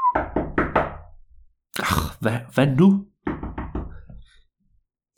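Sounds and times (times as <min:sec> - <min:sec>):
police knocking heavily on a door: 0:00.2 - 0:01.1, 0:03.2 - 0:04.2
speech: 0:02.2 - 0:03.1.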